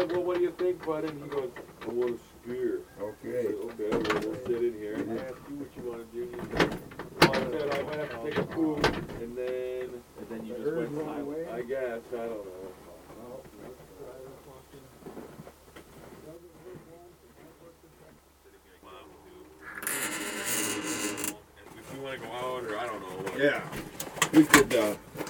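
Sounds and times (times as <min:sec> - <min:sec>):
speech: 0:00.0 - 0:14.9, 0:22.1 - 0:25.2
people talking quietly: 0:00.0 - 0:25.2
door being handled and opened with rattling scraping clatter: 0:19.6 - 0:21.4.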